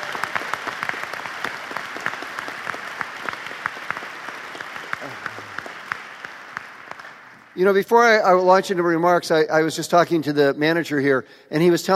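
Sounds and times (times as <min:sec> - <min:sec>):
large audience applauding: 0:00.0 - 0:07.6
speech: 0:07.6 - 0:11.9.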